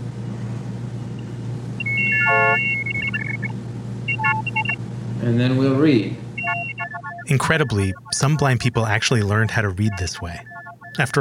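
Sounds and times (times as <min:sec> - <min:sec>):
low continuous hum: 0:00.0 - 0:11.2
optophone reading machine turning printed letters into tones: 0:01.8 - 0:03.5, 0:04.1 - 0:04.8, 0:06.4 - 0:11.2
speech: 0:05.2 - 0:06.2, 0:07.3 - 0:11.2.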